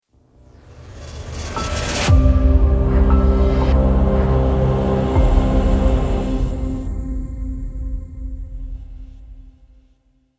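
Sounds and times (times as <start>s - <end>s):
elegant logo ident music: 1.2s - 8.6s.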